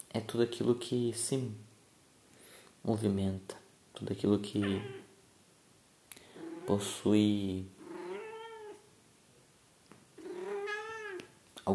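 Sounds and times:
speech: 0:00.2 - 0:01.7, 0:02.8 - 0:05.0, 0:06.7 - 0:07.8
cat meowing: 0:04.6 - 0:05.2, 0:07.8 - 0:08.8, 0:10.2 - 0:11.3.

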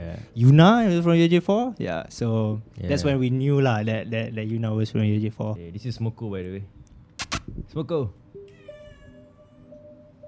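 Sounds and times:
faint hum: 0:00.0 - 0:10.2
speech: 0:00.2 - 0:06.8, 0:07.5 - 0:08.2
male cat meowing: 0:08.4 - 0:10.2.

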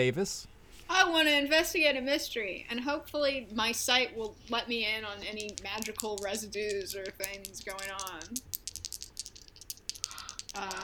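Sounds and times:
speech: 0:00.0 - 0:08.6, 0:10.6 - 0:10.8
dice clattering and tumbling across a hard surface: 0:04.8 - 0:10.8.

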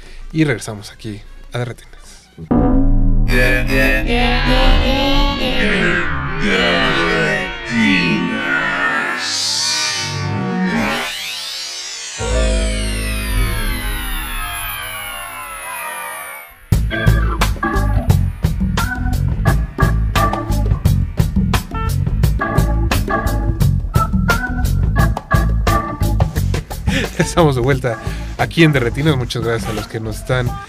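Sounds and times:
speech: 0:00.3 - 0:07.1, 0:07.7 - 0:08.3, 0:27.4 - 0:30.6
electronic music with layered melodic tones and fast beat: 0:02.4 - 0:26.2
laughter: 0:26.9 - 0:27.5.

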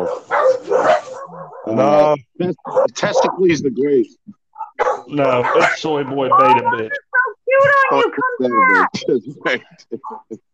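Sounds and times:
speech: 0:00.0 - 0:00.8, 0:01.7 - 0:04.2, 0:05.1 - 0:10.4
dog barking and yipping: 0:00.0 - 0:01.8, 0:02.6 - 0:03.4, 0:04.6 - 0:06.4, 0:07.1 - 0:08.4, 0:10.0 - 0:10.3
dog's higher-pitched whining bark: 0:00.0 - 0:01.8, 0:02.6 - 0:03.4, 0:04.6 - 0:05.9.

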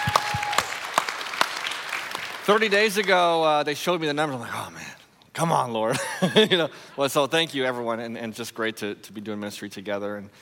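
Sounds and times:
church audience applauding: 0:00.0 - 0:03.2
sharp loud claps: 0:00.0 - 0:03.2
speech: 0:02.5 - 0:10.4.

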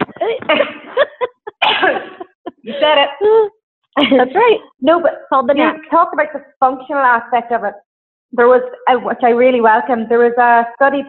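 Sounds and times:
laughter: 0:00.2 - 0:03.0
speech: 0:00.5 - 0:00.7, 0:02.8 - 0:11.0
woman coughing: 0:00.6 - 0:02.8.

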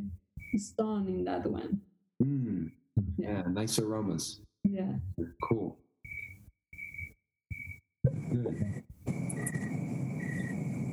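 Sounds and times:
crickets chirping: 0:00.4 - 0:00.6, 0:06.1 - 0:07.8, 0:09.1 - 0:10.9
speech: 0:00.5 - 0:01.9, 0:03.2 - 0:05.8, 0:08.3 - 0:08.8.

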